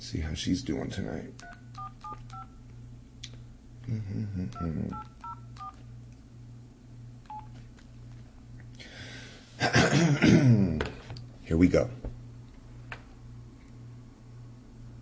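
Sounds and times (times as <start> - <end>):
speech: 0.0 - 1.6, 3.9 - 5.1, 11.5 - 12.0
low steady hum: 0.0 - 14.9
telephone keypad tones as a phone number is dialed: 1.4 - 2.6, 4.5 - 5.8, 7.2 - 7.6.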